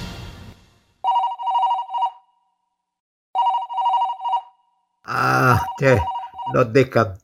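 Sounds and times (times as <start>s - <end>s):
telephone ringing: 1.0s - 2.3s, 3.4s - 4.8s, 5.7s - 6.7s
rough grunting noise: 5.1s - 7.2s
speech: 5.8s - 7.2s.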